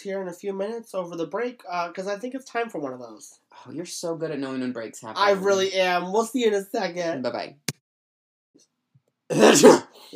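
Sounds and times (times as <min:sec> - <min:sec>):
speech: 0:00.0 - 0:07.7, 0:09.3 - 0:10.1
person faking an exaggerated stage sneeze: 0:09.3 - 0:10.0.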